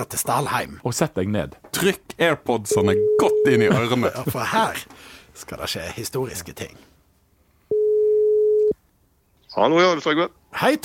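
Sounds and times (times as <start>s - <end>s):
speech: 0.0s - 6.9s, 9.6s - 10.8s
telephone ringback tone: 2.7s - 3.6s, 7.7s - 8.8s.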